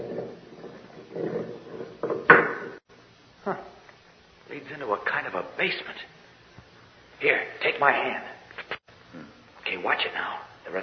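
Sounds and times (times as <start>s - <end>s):
heavy stone door with a ring grinding open: 0.0s - 2.8s
speech: 3.4s - 3.7s, 4.6s - 6.2s, 7.2s - 8.3s, 9.8s - 10.8s.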